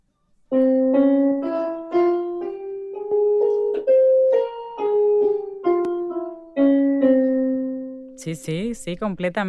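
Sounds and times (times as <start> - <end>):
Phrygian dominant scale played on a melodic instrument: 0.5 - 8.2
speech: 8.2 - 9.4.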